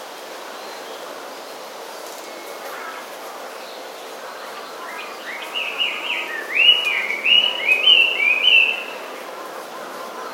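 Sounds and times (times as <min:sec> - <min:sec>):
Chinese hwamei song: 0:05.4 - 0:09.0.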